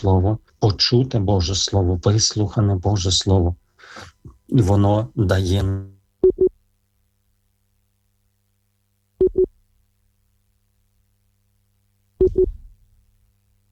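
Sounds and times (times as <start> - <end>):
speech: 0.0 - 5.9
busy tone of a failed Viber call: 9.2 - 9.5, 12.2 - 12.6.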